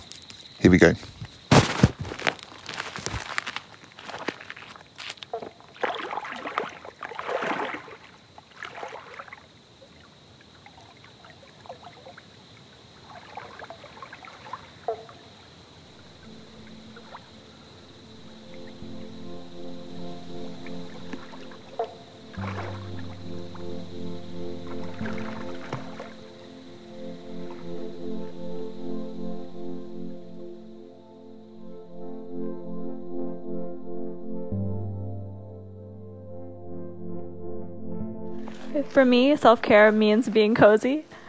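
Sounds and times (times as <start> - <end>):
speech: 0.6 - 1.2, 38.9 - 41.1
water splashing as a person eases into water: 3.5 - 15.4, 20.9 - 23.6, 24.6 - 26.5, 38.4 - 41.2
low steady hum: 15.9 - 41.2.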